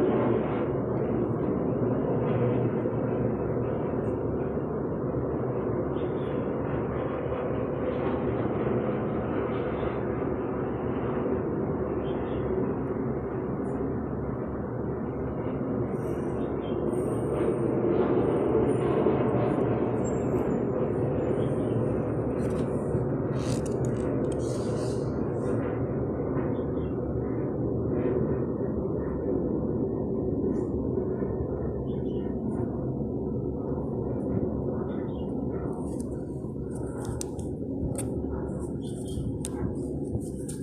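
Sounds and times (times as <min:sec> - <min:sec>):
airplane flying overhead: 0:00.0 - 0:40.6.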